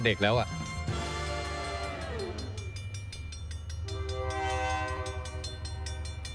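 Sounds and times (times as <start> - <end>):
speech: 0.0 - 0.6
passenger train horn blasts: 0.0 - 2.4, 3.9 - 6.0
passenger train rumbling: 0.0 - 6.3.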